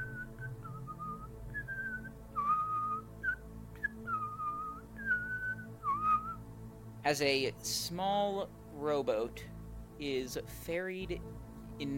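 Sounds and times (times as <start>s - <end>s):
person whistling a slow wandering melody: 0.0s - 6.4s
speech: 7.0s - 11.9s.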